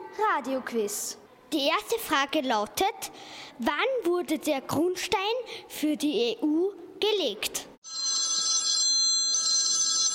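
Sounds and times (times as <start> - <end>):
speech: 0.2 - 7.7
electronic telephone ringing with an incoming call to a radio quiz: 7.8 - 10.1.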